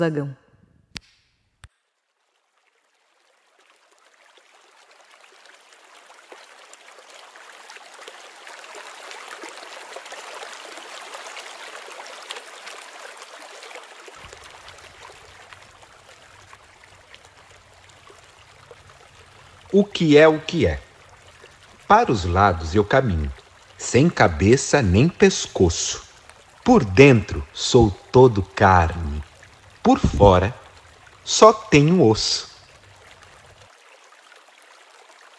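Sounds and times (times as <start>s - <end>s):
speech: 0.0s - 0.4s, 19.8s - 20.8s, 21.9s - 26.0s, 26.6s - 30.6s, 31.3s - 32.5s
small stream of a Pajeú river tributary flowing in Pernambuco Brazil: 1.0s - 35.3s.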